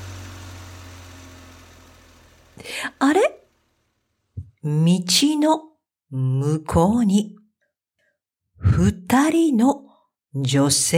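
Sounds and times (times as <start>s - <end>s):
truck engine driving away: 0.0s - 4.6s
speech: 2.6s - 3.3s, 4.6s - 7.4s, 8.6s - 10.9s.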